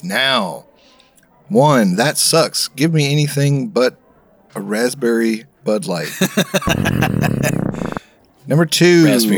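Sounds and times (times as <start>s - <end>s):
speech: 0.0s - 0.7s, 1.5s - 9.3s
laughter: 5.8s - 8.0s
belch while tasting beers: 6.6s - 8.0s.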